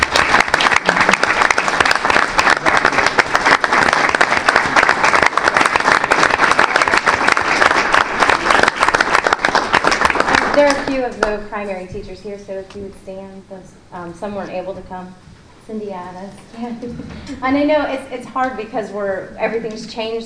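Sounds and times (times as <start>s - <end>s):
large crowd clapping: 0.0s - 11.4s
speech: 10.6s - 20.2s.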